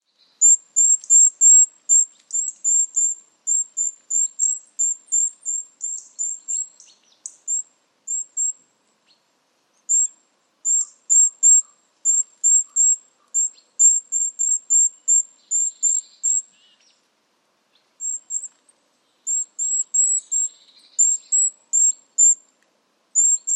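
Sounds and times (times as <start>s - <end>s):
bird giving high thin chirps: 0.0s - 9.2s, 9.8s - 17.0s, 17.7s - 22.4s, 23.2s - 23.5s.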